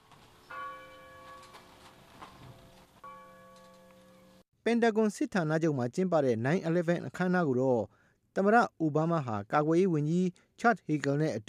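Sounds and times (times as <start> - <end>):
bell tolling at a memorial ceremony: 0.4 - 4.4
speech: 4.7 - 11.4.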